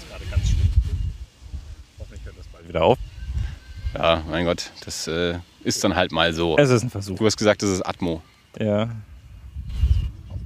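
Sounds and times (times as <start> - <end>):
outdoor wind buffeting the microphone in rumbling gusts: 0.0 - 4.8, 8.9 - 10.4
speech: 2.7 - 3.1, 3.9 - 9.1.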